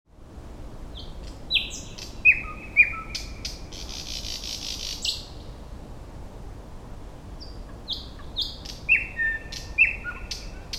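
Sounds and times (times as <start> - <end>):
Thrush Nightingale Luscinia luscinia singing: 0.9 - 5.6, 7.3 - 10.7.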